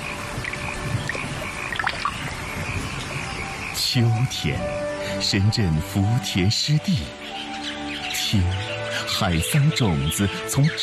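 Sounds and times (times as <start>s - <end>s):
rain pattering on waterlogged rice paddies: 0.0s - 4.0s
frogs calling: 0.0s - 10.8s
speech: 3.9s - 7.3s, 8.3s - 10.8s.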